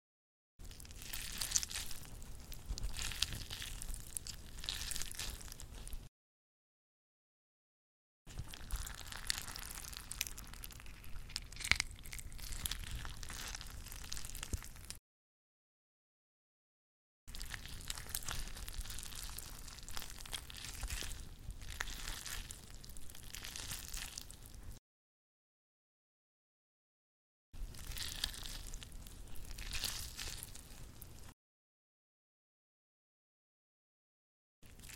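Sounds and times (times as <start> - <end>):
squishing sounds: 0.6 - 6.1, 8.3 - 15.0, 17.3 - 24.8, 27.6 - 31.4, 34.6 - 34.9.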